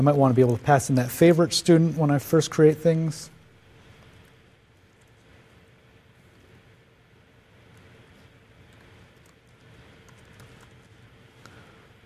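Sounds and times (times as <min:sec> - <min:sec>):
speech: 0:00.0 - 0:03.3
computer keyboard typing: 0:07.7 - 0:11.1.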